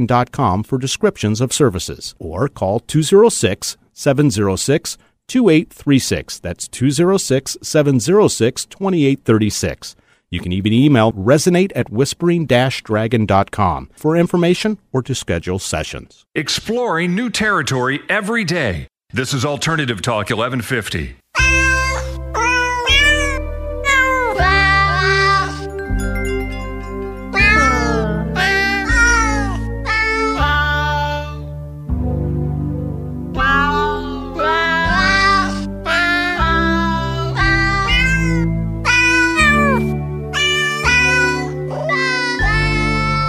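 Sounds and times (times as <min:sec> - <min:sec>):
speech: 0:00.0 - 0:21.7
cat meows pitched into a bouncy Christmas melody: 0:21.4 - 0:25.6, 0:27.4 - 0:31.4, 0:33.4 - 0:43.2
steady bass accompaniment: 0:23.0 - 0:40.4.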